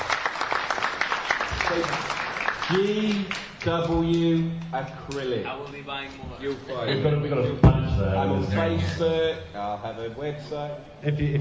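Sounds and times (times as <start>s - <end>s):
room full of people clapping: 0.0s - 6.2s
speech: 1.7s - 11.3s.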